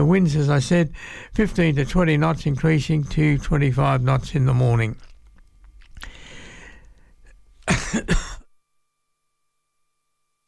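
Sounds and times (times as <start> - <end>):
speech: 0.0 - 5.1, 7.9 - 8.2
harsh cough clearing a tickle in the throat: 7.6 - 8.5.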